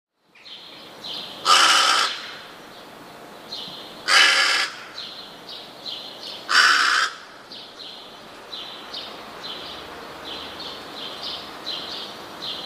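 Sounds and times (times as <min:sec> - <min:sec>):
rook giving loud harsh caws: 0:01.4 - 0:02.5, 0:04.0 - 0:05.0, 0:06.5 - 0:07.4.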